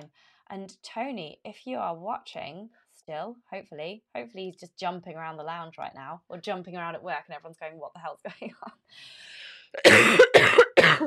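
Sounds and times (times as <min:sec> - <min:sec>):
speech: 0:00.5 - 0:11.0
loud harsh coughing: 0:09.8 - 0:11.0.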